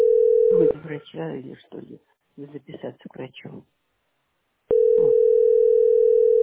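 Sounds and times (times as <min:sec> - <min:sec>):
steady telephone tone while waiting in a call queue: 0:00.0 - 0:00.7, 0:04.7 - 0:06.4
speech: 0:00.9 - 0:03.8, 0:05.0 - 0:05.3.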